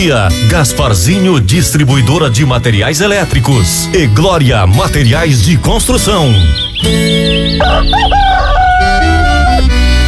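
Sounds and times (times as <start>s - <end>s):
speech: 0.0s - 8.5s
music bed: 0.0s - 10.0s
rooster crowing: 7.6s - 9.8s.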